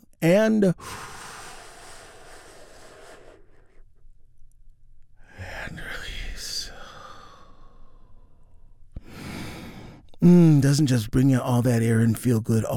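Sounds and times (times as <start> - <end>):
speech: 0.2 - 1.2, 10.2 - 12.7
deep breath: 0.8 - 4.0, 6.7 - 10.2.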